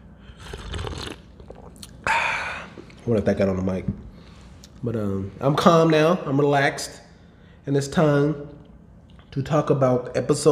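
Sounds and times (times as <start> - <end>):
wet slurping sip of hot tea: 0.3 - 2.0
soft mouth noises: 0.3 - 3.0
breathy burst: 2.0 - 2.9
speech: 3.1 - 4.0, 4.8 - 7.0, 7.6 - 8.6, 9.3 - 10.5.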